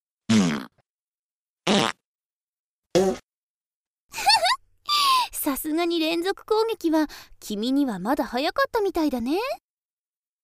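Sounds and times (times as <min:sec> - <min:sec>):
loud raspy farts: 0:00.3 - 0:00.8, 0:01.7 - 0:02.0, 0:02.9 - 0:03.3
speech: 0:05.6 - 0:09.6.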